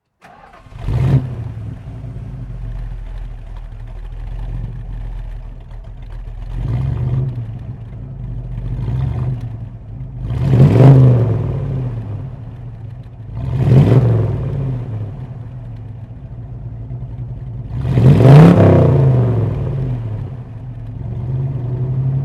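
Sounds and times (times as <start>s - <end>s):
Dodge Challenger 383 engine: 0.0s - 22.2s.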